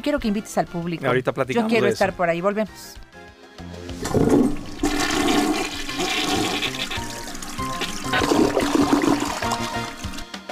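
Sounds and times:
speech: 0.0 - 4.4
toilet water gurgling and refilling trickles: 3.9 - 10.3
toilet flushing: 4.0 - 10.3.

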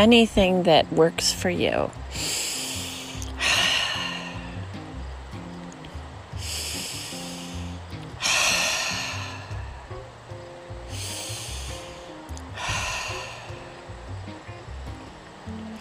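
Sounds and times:
speech: 0.0 - 2.4
soft low sustained musical backdrop: 0.0 - 15.8
deep cleansing breaths during a guided relaxation exercise: 2.1 - 4.9, 6.3 - 10.1, 10.8 - 14.2.

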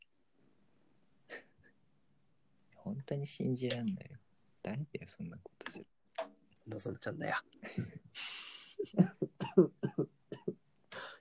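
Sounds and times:
speech: 2.9 - 6.0, 6.7 - 9.8
laughter: 7.6 - 8.0, 8.6 - 10.1
person coughing: 9.0 - 11.1.

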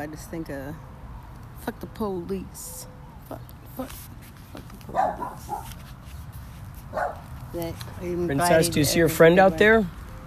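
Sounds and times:
speech: 0.0 - 1.0, 1.6 - 6.0, 6.9 - 10.0
single short dog bark: 4.9 - 5.8, 6.9 - 7.3.

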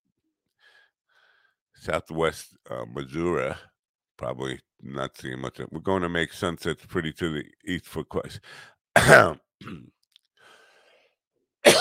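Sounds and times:
faint breathing: 0.6 - 1.6, 8.4 - 8.8, 10.4 - 11.2
speech: 1.8 - 10.0
person coughing: 9.0 - 9.9.

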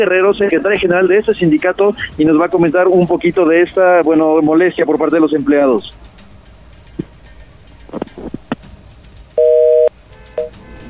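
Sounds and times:
speech: 0.0 - 6.2
phone line clicks and line noise: 7.8 - 8.7, 9.4 - 10.6
telephone busy tone after a dropped call: 9.4 - 10.5.

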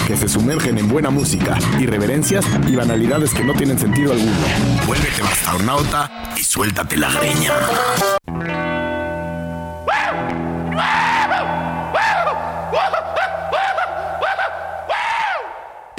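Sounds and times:
speech: 0.1 - 8.6
excited yelps and whooping shouts processed with effects and distortion: 9.9 - 15.8.

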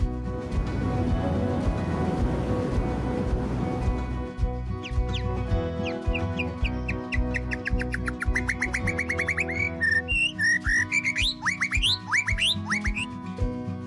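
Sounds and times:
broad rushing wash of ocean waves: 0.0 - 13.2
quick high bird chirps and tweets: 4.7 - 13.2.

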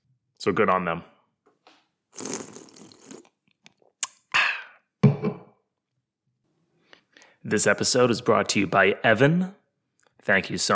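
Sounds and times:
speech: 0.4 - 1.1, 7.5 - 9.6, 10.3 - 10.7
wet slurping of beer: 2.1 - 3.4
person sipping beer: 2.1 - 4.9.

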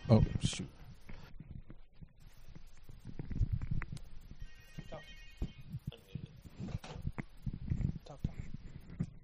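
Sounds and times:
voices: 0.0 - 1.3, 4.7 - 9.2
noise: 0.0 - 9.2
red police phone ringing with electronic trilling tones: 4.4 - 6.1.

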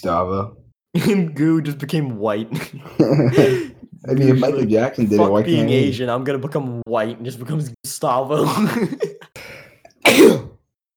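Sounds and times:
speech: 0.0 - 10.5
laughter: 2.5 - 6.0, 8.4 - 9.4
person sneezing: 10.0 - 10.6.

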